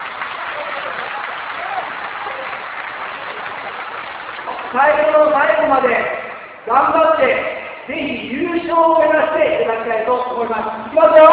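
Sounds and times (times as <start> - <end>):
audience clapping for a correct answer: 0.0 - 5.4
speech: 4.7 - 11.3.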